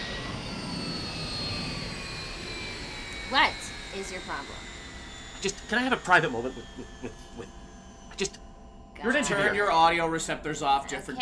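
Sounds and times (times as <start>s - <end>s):
aircraft engines roaring for takeoff: 0.0s - 11.1s
speech: 3.3s - 4.7s, 5.4s - 7.6s, 8.2s - 8.4s, 9.0s - 11.1s.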